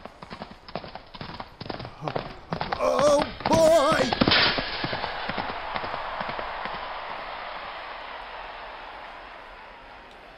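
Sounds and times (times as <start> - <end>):
horse hooves clip-clopping as a horse is ridden into a charge: 0.0 - 6.8.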